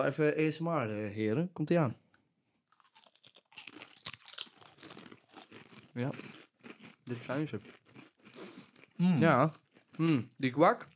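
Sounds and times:
speech: 0:00.0 - 0:02.0, 0:06.0 - 0:06.4, 0:07.1 - 0:07.8, 0:09.0 - 0:10.9
crisp snack bitten and chewed: 0:02.7 - 0:10.9.

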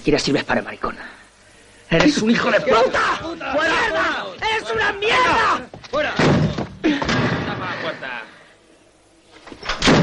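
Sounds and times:
speech: 0:00.0 - 0:01.1, 0:01.9 - 0:07.0
people shouting angrily: 0:02.2 - 0:06.5
prison cell door slamming shut: 0:06.2 - 0:07.6, 0:09.6 - 0:10.0.

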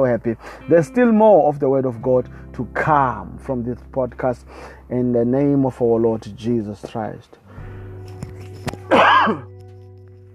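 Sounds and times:
speech: 0:00.0 - 0:07.4, 0:08.6 - 0:09.5
single raspy cough: 0:08.9 - 0:09.5.

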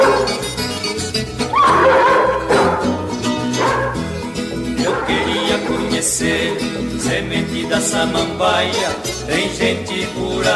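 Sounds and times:
dog barking: 0:00.0 - 0:00.5, 0:01.6 - 0:04.1, 0:04.8 - 0:06.0
instrumental music with plucked strings: 0:00.0 - 0:10.5.

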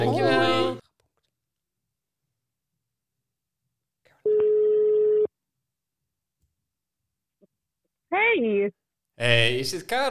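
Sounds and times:
telephone line tone while calling someone: 0:04.2 - 0:05.3
speech: 0:08.3 - 0:10.0.

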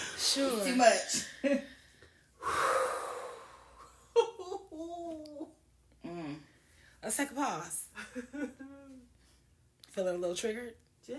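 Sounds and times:
speech: 0:00.4 - 0:01.7, 0:07.1 - 0:08.9, 0:10.0 - 0:11.1
deep breath inhalation during a guided pause: 0:01.8 - 0:03.9.

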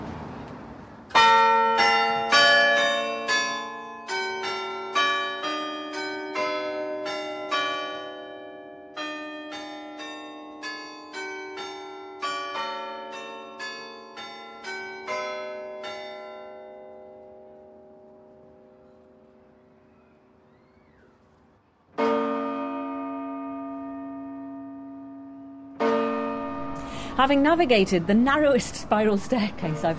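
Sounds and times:
carillon bells ringing a bright rapid melody: 0:01.2 - 0:17.0, 0:22.0 - 0:29.9
speech: 0:27.2 - 0:29.9.

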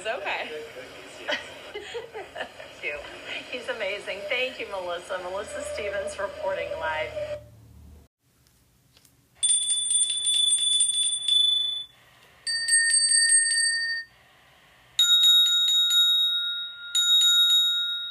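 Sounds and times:
speech: 0:00.0 - 0:07.5
laughter: 0:00.6 - 0:04.2
hand bell ringing: 0:09.4 - 0:11.9, 0:12.5 - 0:14.1, 0:15.0 - 0:18.0.

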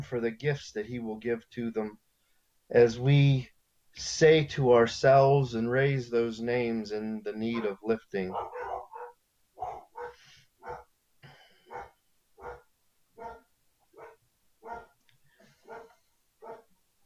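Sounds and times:
speech: 0:00.0 - 0:02.0, 0:02.7 - 0:08.7
dogs barking at a person walking in front of a house: 0:08.3 - 0:10.9, 0:11.7 - 0:15.0, 0:15.6 - 0:16.7.

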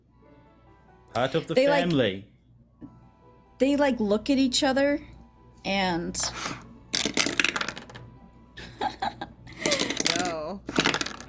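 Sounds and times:
speech: 0:01.2 - 0:02.3, 0:03.6 - 0:07.2
handful of dice tumbling across a hard tabletop: 0:07.0 - 0:08.1, 0:09.6 - 0:11.2
laughter: 0:08.6 - 0:10.0.

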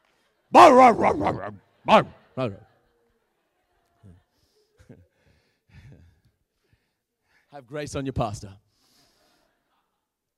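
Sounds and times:
speech: 0:00.5 - 0:02.7, 0:07.6 - 0:08.6
person imitating a dog barking: 0:00.6 - 0:02.1.

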